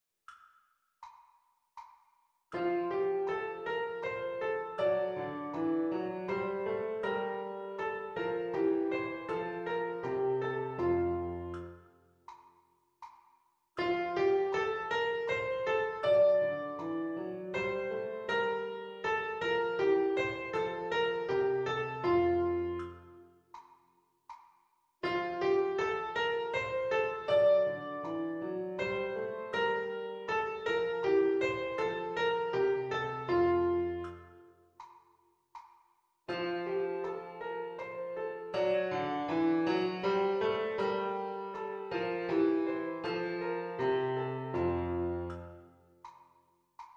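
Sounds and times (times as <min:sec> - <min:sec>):
two-voice melodic dictation in F major: 0:02.6 - 0:11.7, 0:13.8 - 0:23.2, 0:25.0 - 0:34.4, 0:36.3 - 0:45.6.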